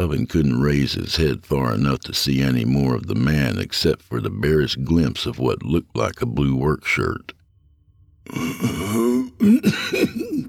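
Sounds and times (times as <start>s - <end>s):
speech: 0.0s - 7.4s, 8.3s - 10.4s
person coughing with a strained raspy cough: 8.3s - 10.4s.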